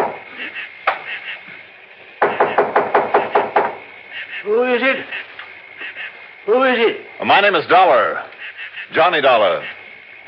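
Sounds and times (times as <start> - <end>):
firm knocking on a wooden door: 0.0 - 0.2, 2.2 - 3.8
speech: 4.4 - 5.2, 6.5 - 8.2, 8.9 - 9.8.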